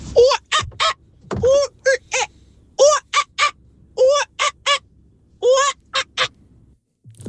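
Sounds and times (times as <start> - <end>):
voice imitating a whooper swan call: 0.2 - 4.8, 5.4 - 6.4.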